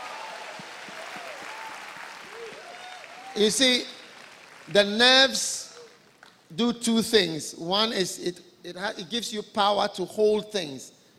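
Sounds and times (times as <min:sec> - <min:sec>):
faint vocal whoops: 0:00.0 - 0:03.5
crowd clapping: 0:00.0 - 0:06.4
speech: 0:03.4 - 0:04.0, 0:04.7 - 0:05.6, 0:06.5 - 0:11.0.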